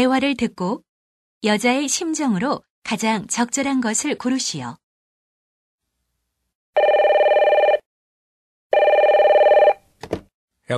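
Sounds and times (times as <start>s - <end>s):
speech: 0.0s - 4.8s
telephone ringing: 6.8s - 7.9s, 8.7s - 9.8s.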